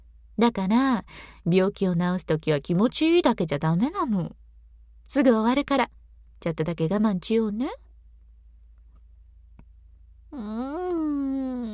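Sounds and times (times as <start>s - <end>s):
speech: 0.4s - 4.4s, 5.1s - 7.8s, 10.3s - 11.2s
whiny fussing moan: 10.3s - 11.7s.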